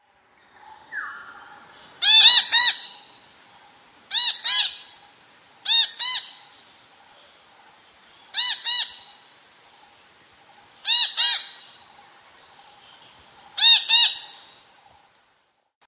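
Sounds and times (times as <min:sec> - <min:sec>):
red-breasted parakeet calls: 0:00.9 - 0:03.1, 0:04.1 - 0:05.0, 0:05.6 - 0:06.5, 0:08.3 - 0:09.1, 0:10.8 - 0:11.6, 0:13.6 - 0:14.5.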